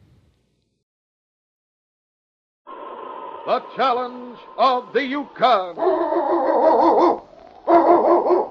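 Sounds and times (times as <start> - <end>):
speech: 3.4 - 7.2
sled dog barking: 5.8 - 8.4.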